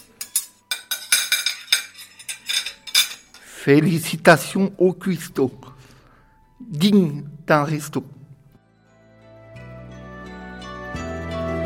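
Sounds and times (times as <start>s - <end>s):
plate, knife and fork clinking as picked up in a kitchen: 0.0s - 3.5s
speech: 3.6s - 5.7s, 6.7s - 8.2s.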